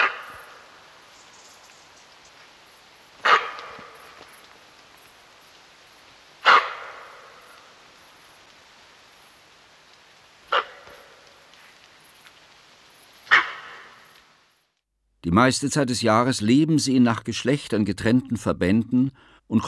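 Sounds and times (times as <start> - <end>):
female fallow deer alarm barks: 0.0 - 0.7, 3.2 - 4.2, 6.4 - 7.7, 10.4 - 11.4, 13.2 - 14.1
steady hiss of noise: 0.0 - 17.5
speech: 15.2 - 19.6.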